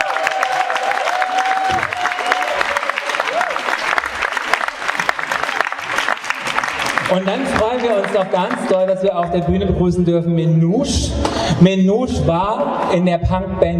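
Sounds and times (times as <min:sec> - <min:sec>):
faint whistles or cheers: 0:00.0 - 0:03.8
live audience applause: 0:00.0 - 0:08.9
speech: 0:07.1 - 0:13.7.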